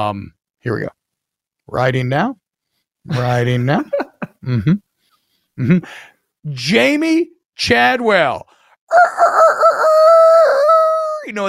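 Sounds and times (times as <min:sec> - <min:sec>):
speech: 0:00.0 - 0:01.0, 0:01.7 - 0:02.4, 0:03.0 - 0:04.8, 0:05.6 - 0:10.3, 0:11.3 - 0:11.4
rooster crowing: 0:08.9 - 0:11.3.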